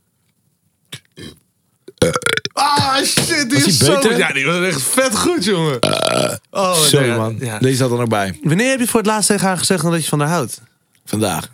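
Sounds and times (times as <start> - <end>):
person burping: 0.9 - 3.0, 5.8 - 6.5
speech: 2.9 - 11.5.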